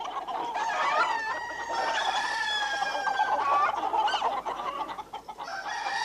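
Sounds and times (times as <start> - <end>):
flock of chickens clucking and squawking: 0.0 - 6.0
rooster-like crow: 0.6 - 3.3, 5.4 - 6.0.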